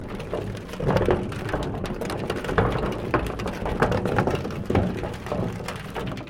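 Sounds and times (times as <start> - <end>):
barrel sounds: 0.0 - 6.2.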